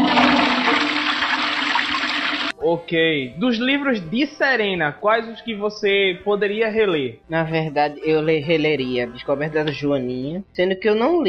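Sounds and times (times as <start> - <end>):
toilet flushing: 0.0 - 2.6
speech: 2.7 - 11.2.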